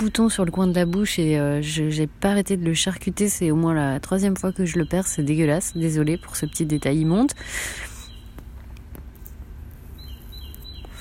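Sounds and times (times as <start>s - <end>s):
small bird singing: 0.0s - 2.0s, 3.8s - 8.4s, 9.8s - 10.9s
speech: 0.0s - 7.9s
low steady rumble: 0.0s - 10.9s.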